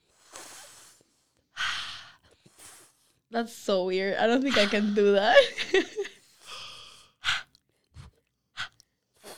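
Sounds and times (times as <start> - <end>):
hissing cooling breath drawn in through a curled tongue during yoga: 0.0 - 3.3, 6.3 - 9.3
speech: 3.3 - 6.1.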